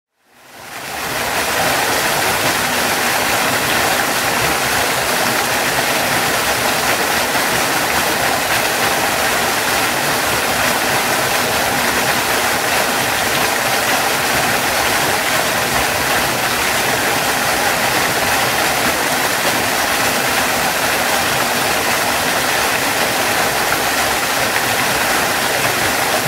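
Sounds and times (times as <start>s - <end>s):
waterfall: 0.1s - 26.2s.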